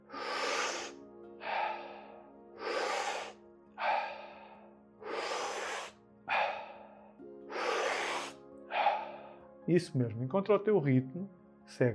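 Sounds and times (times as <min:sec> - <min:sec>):
slow steady in-and-out breathing in a guided breathing exercise: 0:00.0 - 0:09.6
speech: 0:09.7 - 0:11.9.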